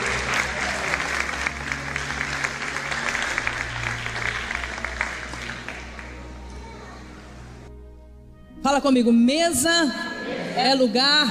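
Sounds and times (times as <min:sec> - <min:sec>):
audience applauding: 0:00.0 - 0:07.0
speech: 0:08.7 - 0:11.2.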